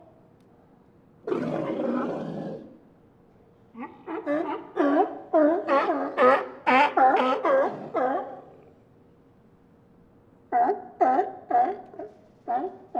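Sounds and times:
group of sea lions barking: 0:03.8 - 0:08.6, 0:10.5 - 0:12.9.

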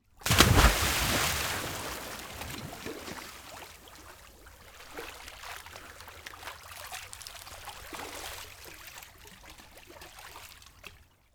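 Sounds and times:
swimmer diving hard into water: 0:00.2 - 0:03.7.

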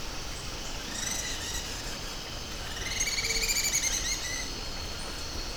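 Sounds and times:
jungle ambience outdoors in Coroico, Bolivia: 0:00.0 - 0:05.4.

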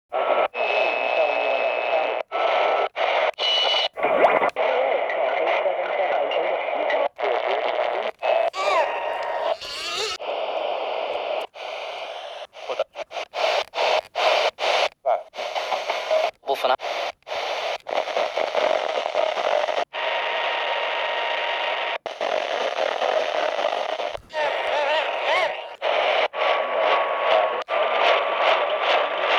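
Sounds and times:
radio tuning static noise: 0:00.1 - 0:29.3.

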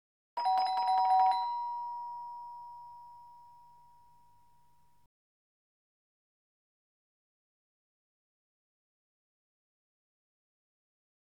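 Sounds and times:
household ding-dong doorbell: 0:00.4 - 0:05.0.

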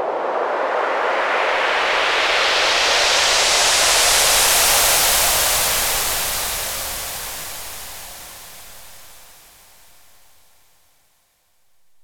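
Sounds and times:
wet white noise sweep: 0:00.1 - 0:10.7.

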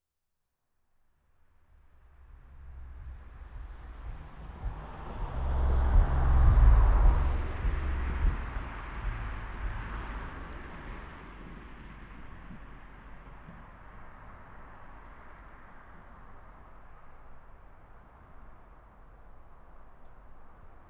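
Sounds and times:
car passing by outdoors: 0:02.3 - 0:20.8.

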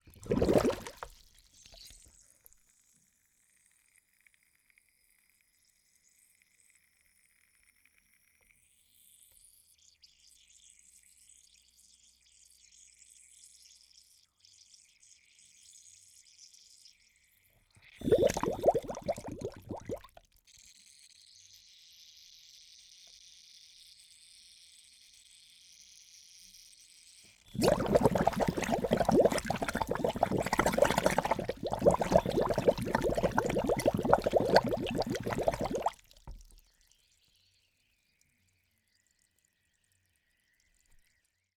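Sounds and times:
submerged scuba diving regulator bubbles underwater: 0:00.1 - 0:01.1, 0:18.0 - 0:20.1, 0:27.6 - 0:36.4.

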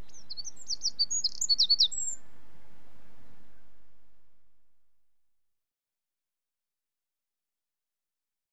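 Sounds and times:
Eurasian wren song: 0:00.0 - 0:04.8.

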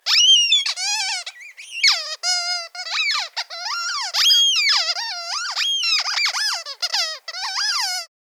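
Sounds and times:
cartoon rubber duck squeak: 0:00.1 - 0:08.1.

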